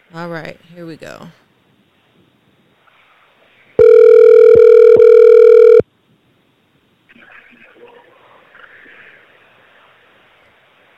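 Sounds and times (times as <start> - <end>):
speech: 0.1 - 1.4
steady buzzy telephone tone while a number is dialed: 3.8 - 5.8.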